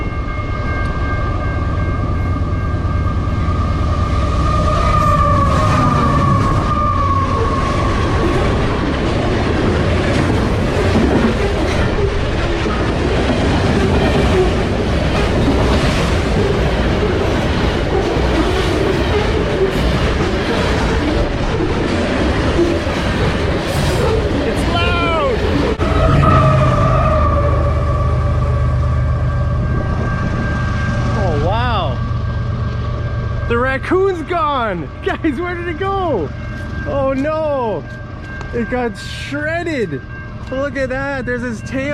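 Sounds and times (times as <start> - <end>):
train cars roaring and rattling on the tracks: 0.0 - 41.9
train horn: 3.4 - 8.4, 25.8 - 31.4
speech: 38.6 - 41.9.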